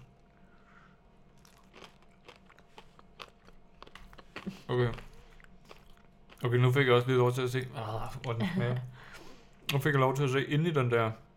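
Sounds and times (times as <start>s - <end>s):
person biting and chewing a hard candy: 1.4s - 6.7s
speech: 4.4s - 5.1s, 6.4s - 8.9s, 9.7s - 11.2s.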